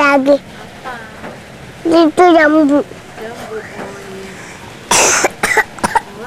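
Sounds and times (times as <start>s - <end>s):
speech: 0.1s - 0.5s, 1.9s - 3.8s
person coughing harshly: 4.9s - 6.2s.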